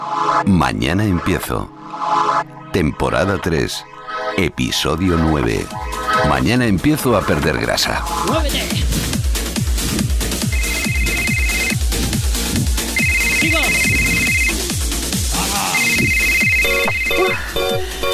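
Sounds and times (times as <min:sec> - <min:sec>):
speech: 0:00.4 - 0:02.0, 0:02.8 - 0:09.1
loud pounding dance music with a fast steady beat: 0:08.2 - 0:17.3
mobile phone ringtone: 0:10.5 - 0:11.8, 0:13.0 - 0:14.7, 0:15.8 - 0:18.1.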